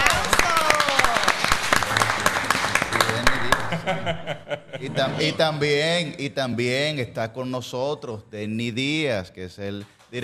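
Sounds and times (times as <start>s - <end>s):
crowd applauding: 0.0s - 4.2s, 9.7s - 10.2s
laughter: 1.9s - 5.6s
speech: 4.0s - 10.2s.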